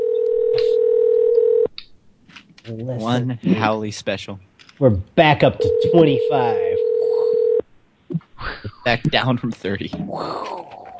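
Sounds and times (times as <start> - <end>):
electronic telephone ring tone on a call: 0.0 - 1.7, 5.6 - 7.6
speech: 2.7 - 6.7, 8.8 - 10.6.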